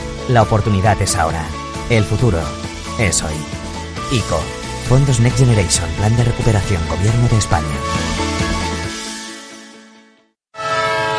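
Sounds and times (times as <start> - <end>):
speech: 0.3 - 8.3
loud train horn blaring as a train departs: 10.5 - 11.1.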